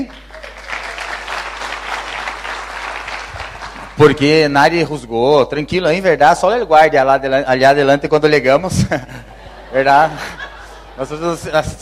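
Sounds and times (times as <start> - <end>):
audience applause: 0.0 - 4.1
speech: 4.0 - 10.4, 11.0 - 11.7
laughter: 8.8 - 11.7.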